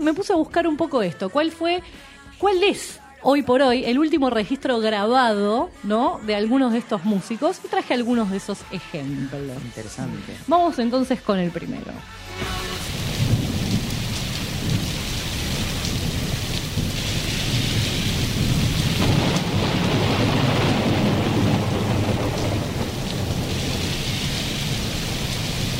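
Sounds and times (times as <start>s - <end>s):
speech: 0.0s - 12.7s
steady heavy rain in a thunderstorm: 12.2s - 25.7s
deep rolling thunder: 12.9s - 25.7s.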